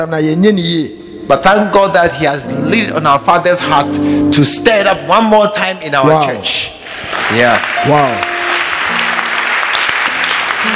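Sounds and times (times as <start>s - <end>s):
speech: 0.0s - 8.6s
large audience in a church clapping: 6.8s - 10.7s.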